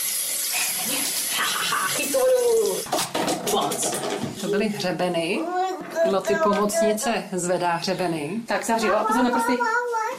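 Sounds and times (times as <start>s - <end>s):
water running from a sink tap into a basin: 0.0s - 2.9s
speech: 1.8s - 9.8s.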